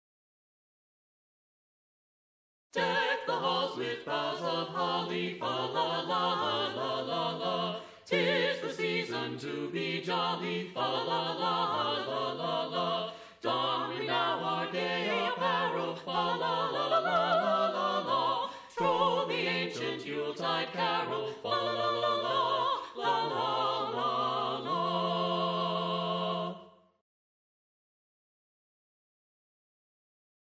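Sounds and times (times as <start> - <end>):
carolers singing: 2.8 - 26.7.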